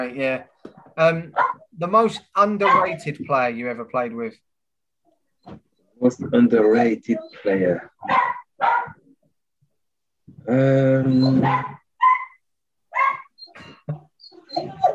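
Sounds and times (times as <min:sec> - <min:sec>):
speech: 0:00.0 - 0:04.5, 0:05.4 - 0:08.8, 0:10.4 - 0:11.8, 0:13.6 - 0:14.0
dog barking: 0:01.3 - 0:01.7, 0:02.6 - 0:03.0, 0:08.0 - 0:09.0, 0:11.3 - 0:13.3
person murmuring: 0:10.4 - 0:11.6.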